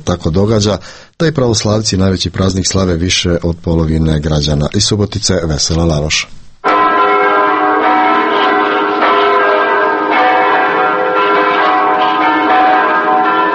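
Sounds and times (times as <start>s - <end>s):
speech: 0.0s - 6.4s
several church bells ringing in a dense peal: 6.6s - 13.5s.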